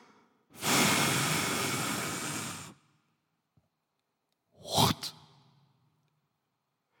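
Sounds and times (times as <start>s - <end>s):
long forceful exhale: 0.0s - 3.1s.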